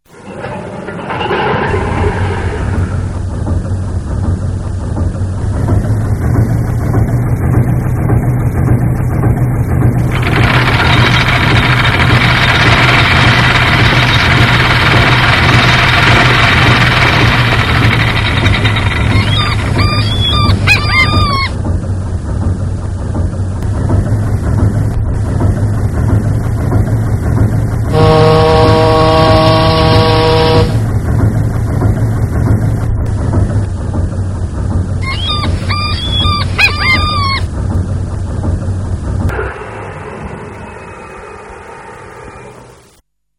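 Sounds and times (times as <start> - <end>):
model inland cargo ship sounds: 0.0 - 43.0.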